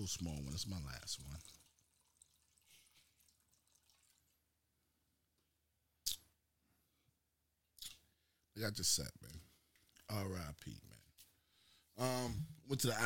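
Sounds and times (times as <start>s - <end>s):
speech: 0.0s - 1.6s, 8.6s - 9.5s, 10.1s - 11.0s, 12.0s - 13.0s
drink being poured in a soft trickle: 0.4s - 4.5s
short sharp splashy bursts of a drink being poured: 1.2s - 4.4s.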